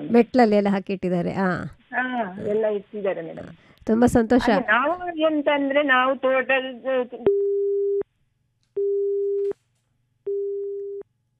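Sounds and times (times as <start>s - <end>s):
speech: 0.1s - 7.6s
telephone busy tone after a call is cut off: 7.3s - 8.0s, 8.8s - 9.4s, 10.3s - 11.0s.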